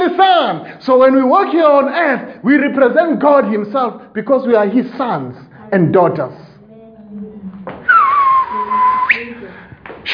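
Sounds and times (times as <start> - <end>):
speech: 0.2 - 6.4
loud lively human whistle sweeping down and jumping upward: 7.8 - 9.4.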